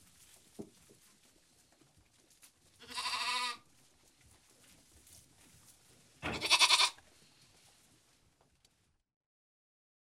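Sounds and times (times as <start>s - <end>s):
lamb bleating: 2.8s - 3.6s, 6.3s - 7.0s.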